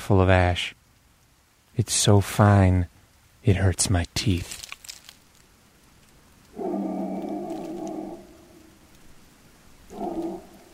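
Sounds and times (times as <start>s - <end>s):
faint hiss: 0.0s - 10.7s
speech: 0.1s - 0.8s, 1.8s - 4.6s
man howling in the desert at night: 6.6s - 8.7s, 9.9s - 10.7s.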